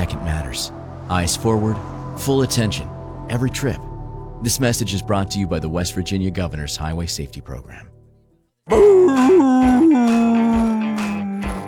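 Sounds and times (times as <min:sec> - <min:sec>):
speech: 0:00.5 - 0:08.0, 0:08.7 - 0:09.5
dog howling: 0:08.7 - 0:11.6.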